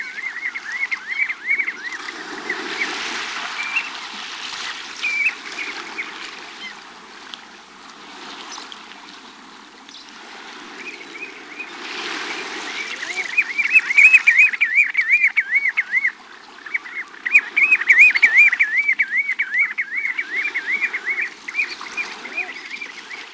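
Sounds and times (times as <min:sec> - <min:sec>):
bird calls of wavering slurred whistled notes: 0:00.0 - 0:04.0, 0:05.0 - 0:05.7, 0:10.8 - 0:23.3.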